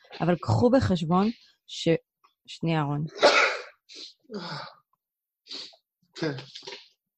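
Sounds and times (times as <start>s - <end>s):
speech: 0.2s - 3.3s, 3.9s - 4.8s, 5.5s - 6.7s
person sneezing: 3.2s - 4.8s.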